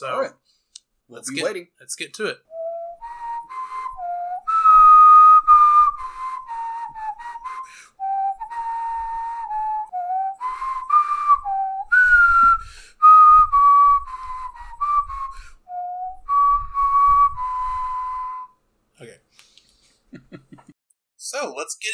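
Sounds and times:
speech: 0.0 - 2.5
person whistling a video game melody: 2.5 - 18.6
laughter: 20.1 - 20.8.

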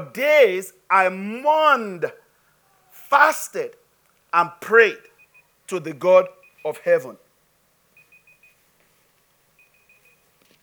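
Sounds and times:
speech: 0.0 - 2.2, 3.1 - 5.1, 5.7 - 7.2
quiet hum: 0.0 - 10.6
high-pitched electronic beeps: 8.0 - 8.6, 9.6 - 10.3.

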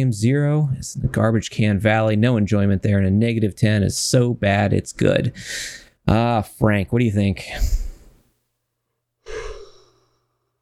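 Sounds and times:
speech: 0.0 - 7.9
long breathy yawn with a slight voiced tone: 9.2 - 10.2
brief breath: 9.2 - 10.5.

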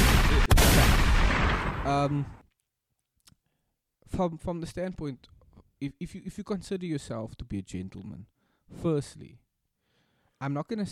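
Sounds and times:
gunfire sound effects: 0.0 - 2.2
speech: 1.9 - 2.4, 4.1 - 9.4, 10.4 - 10.9.

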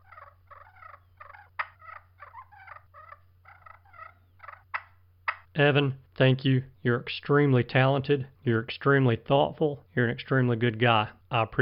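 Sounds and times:
rolling fluttery turkey purrs played on a pot call: 0.0 - 5.4
low constant hum: 0.0 - 11.6
speech: 5.6 - 11.6.

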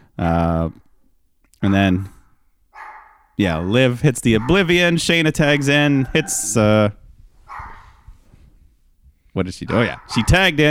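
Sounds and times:
speech: 0.2 - 0.9, 1.6 - 2.2, 3.4 - 7.0, 9.4 - 10.6
dog giving short excited bark and yelp: 2.8 - 3.3, 4.3 - 6.6, 7.5 - 8.1, 9.7 - 10.5.

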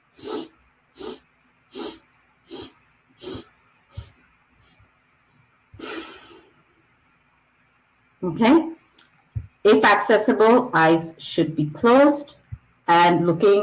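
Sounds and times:
short sharp sniffing inhales in breathwork exercise: 0.0 - 4.8, 5.8 - 6.6
longer breathy exhale in breathwork exercise: 0.1 - 4.8, 5.8 - 6.5
speech: 8.2 - 8.7, 9.6 - 13.6.

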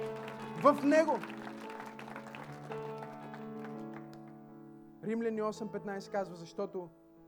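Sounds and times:
audience clapping: 0.0 - 4.5
sustained music: 0.0 - 7.2
speech: 0.6 - 1.4, 5.0 - 7.0.

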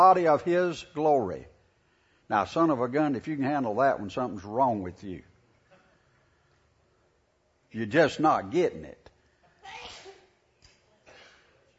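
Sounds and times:
speech: 0.0 - 1.5, 2.3 - 5.3, 7.7 - 9.0
person sneezing in the audience: 9.6 - 10.4.

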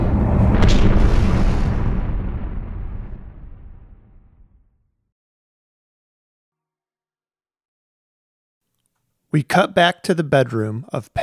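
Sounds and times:
thunderous explosion of meteor hitting earth: 0.0 - 4.9
speech: 9.3 - 11.2.

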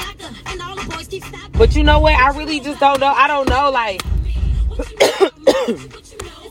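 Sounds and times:
speech: 1.6 - 4.1, 4.8 - 6.1
person coughing: 4.8 - 5.9.

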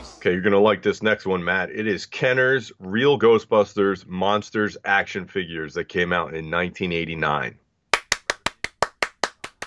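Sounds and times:
speech: 0.2 - 7.6
person clapping slowly: 7.9 - 9.6.

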